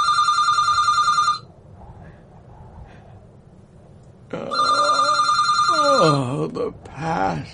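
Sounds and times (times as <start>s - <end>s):
telephone bell ringing loudly: 0.0s - 1.5s, 4.5s - 6.2s
faint low hum: 0.0s - 7.5s
speech: 6.6s - 7.5s.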